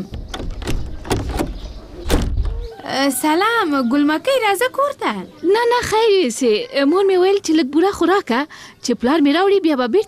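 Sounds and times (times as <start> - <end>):
wooden house door with latch being opened: 0.0 - 2.7
speech: 2.9 - 10.0.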